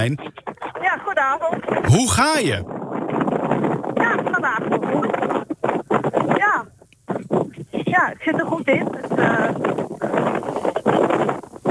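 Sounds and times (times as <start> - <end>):
speech: 0.0 - 0.5, 1.2 - 2.8, 4.4 - 5.2, 8.0 - 9.8
wind buffeting a caller's microphone: 0.0 - 11.7.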